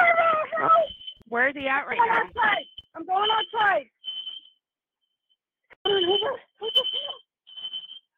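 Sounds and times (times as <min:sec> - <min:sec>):
high-pitched fire alarm beeping: 0:00.7 - 0:01.3, 0:01.9 - 0:04.6, 0:05.9 - 0:08.1
speech: 0:01.5 - 0:03.9, 0:05.8 - 0:07.2.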